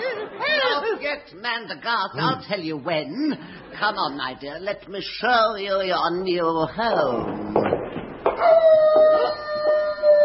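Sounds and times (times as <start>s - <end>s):
speech: 1.1s - 7.6s, 8.4s - 9.5s
wolf howling: 8.4s - 10.2s.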